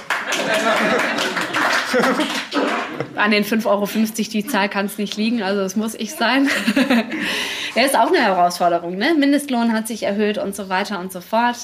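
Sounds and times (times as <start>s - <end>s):
crowd applauding: 0.0s - 3.2s
laughter: 0.0s - 3.2s, 3.9s - 4.9s, 6.0s - 8.0s
speech: 1.9s - 11.6s.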